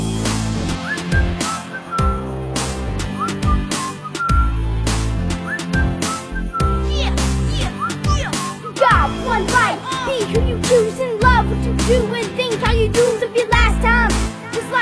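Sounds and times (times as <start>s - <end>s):
deep bass: 0.0s - 1.4s, 2.0s - 3.7s, 4.3s - 13.0s, 13.6s - 14.4s
steady drum beat: 0.0s - 14.7s
person whistling a bright bouncy melody: 0.8s - 2.4s, 3.1s - 4.6s, 5.4s - 6.9s, 7.6s - 8.8s.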